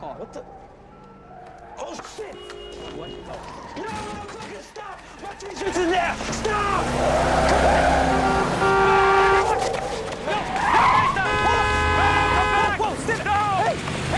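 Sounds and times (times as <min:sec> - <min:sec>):
stolen truck engine roaring and revving as it speeds away: 0:00.0 - 0:14.1
speech: 0:00.2 - 0:00.7, 0:05.2 - 0:08.3
several people shouting and yelling: 0:06.5 - 0:13.4.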